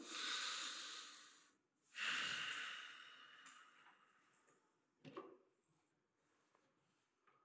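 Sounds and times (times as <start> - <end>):
deep breath in and out: 0.0 - 3.8.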